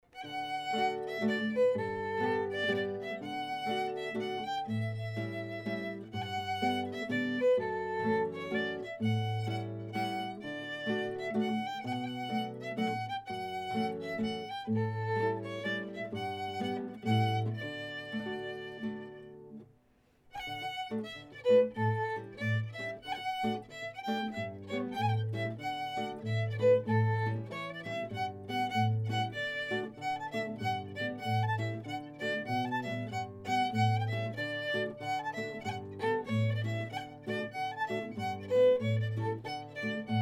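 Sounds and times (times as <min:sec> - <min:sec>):
Irish fiddle playing a jig: 0:00.0 - 0:19.7, 0:20.3 - 0:40.1.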